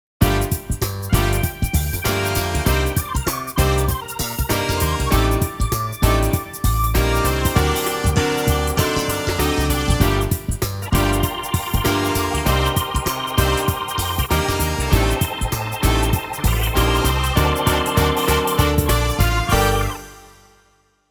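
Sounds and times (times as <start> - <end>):
gospel music mix: 0.2 - 20.7.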